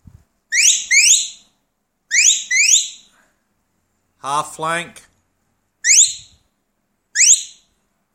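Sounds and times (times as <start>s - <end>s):
high-tone shepherd's sheepdog whistle playing an away-to-me command: 0.5s - 1.4s, 2.1s - 3.1s, 5.8s - 6.4s, 7.2s - 7.7s
speech: 4.2s - 5.1s.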